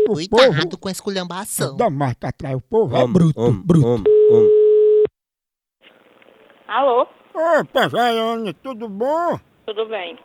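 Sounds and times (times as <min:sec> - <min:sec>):
speech: 0:00.1 - 0:04.6, 0:06.7 - 0:10.2
telephone dial tone as a call is placed: 0:04.1 - 0:05.1.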